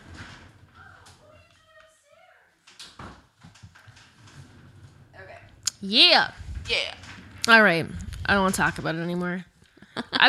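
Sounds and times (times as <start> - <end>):
door pushed shut with a scraping slide and solid thump: 2.9 - 5.5, 6.3 - 8.9
speech: 5.8 - 9.5.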